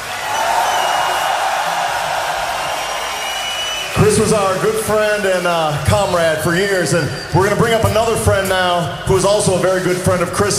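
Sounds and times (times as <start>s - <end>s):
large concert audience applauding and cheering: 0.0s - 7.5s
speech: 4.2s - 10.5s.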